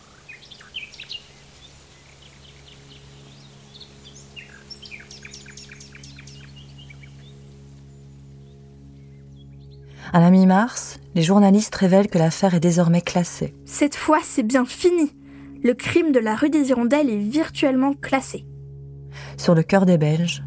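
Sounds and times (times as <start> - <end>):
nightingale singing whistled phrases and trills: 0.0 - 9.9
speech: 10.1 - 18.5, 19.4 - 20.4.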